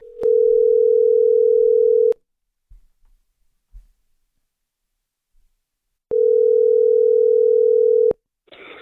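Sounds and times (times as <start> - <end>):
outgoing phone call electronic ringing tone: 0.1 - 2.2, 6.1 - 8.2.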